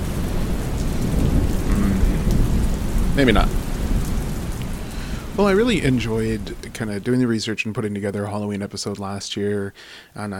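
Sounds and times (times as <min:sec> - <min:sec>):
deep rumbling roll of thunder: 0:00.0 - 0:07.5
steady heavy rain in a thunderstorm: 0:00.0 - 0:07.5
speech: 0:03.2 - 0:03.6, 0:05.4 - 0:10.3.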